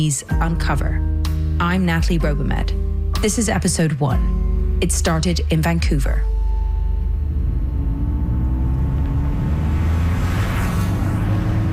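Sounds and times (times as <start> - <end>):
speech: 0.0 - 6.3
car road noise on a Los Angeles freeway toward Long Beach, California: 4.6 - 11.7.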